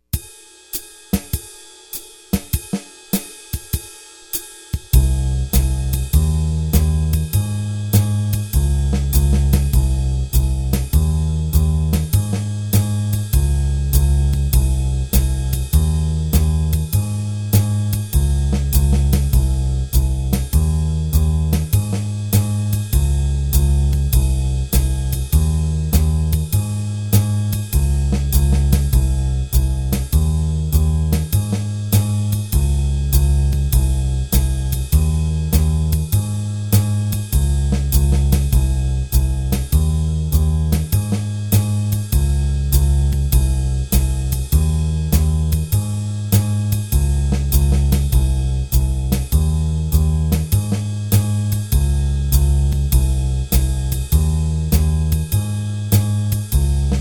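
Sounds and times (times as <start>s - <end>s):
bass drum turnaround: 0.2s - 56.9s.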